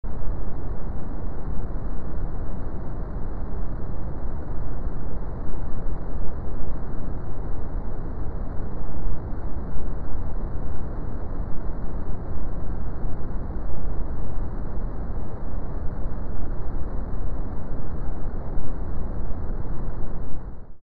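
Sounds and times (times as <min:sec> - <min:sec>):
brown noise: 0:00.1 - 0:20.8.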